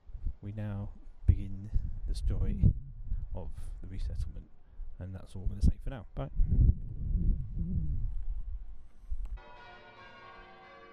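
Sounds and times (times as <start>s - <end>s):
low rumbling outdoor noise: 0.0s - 8.7s
speech: 0.4s - 8.0s
church bell ringing: 9.4s - 10.9s.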